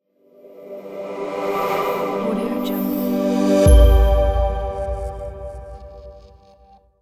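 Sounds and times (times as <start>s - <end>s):
smooth logo sting reveal: 1.0s - 6.6s.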